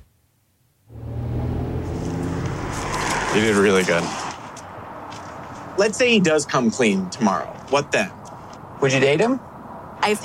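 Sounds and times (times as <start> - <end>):
car engine droning inside a moving car: 0.9 - 4.6
speech: 3.4 - 4.2, 5.8 - 8.2, 8.8 - 9.4, 10.0 - 10.2.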